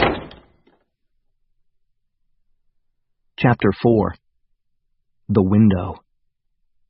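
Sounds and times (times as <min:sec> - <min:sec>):
chipped green door slamming shut: 0:00.0 - 0:00.7
door rattling as it settles: 0:00.0 - 0:00.8
speech: 0:03.4 - 0:04.2, 0:05.3 - 0:06.0.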